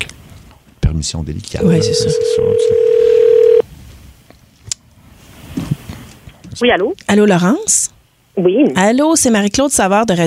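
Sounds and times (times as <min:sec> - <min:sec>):
speech: 0:01.0 - 0:03.2, 0:06.6 - 0:10.2
telephone ring tone on an outgoing call: 0:01.6 - 0:03.6.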